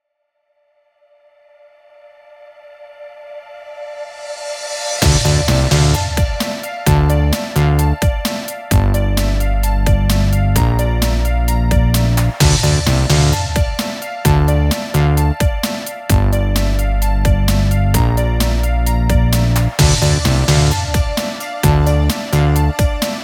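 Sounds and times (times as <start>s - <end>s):
tape synths: 5.0s - 15.4s, 16.1s - 23.2s.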